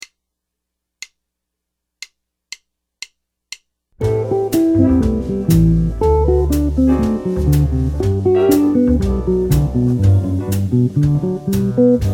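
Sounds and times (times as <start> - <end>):
guitar arpeggios: 4.0 - 12.0.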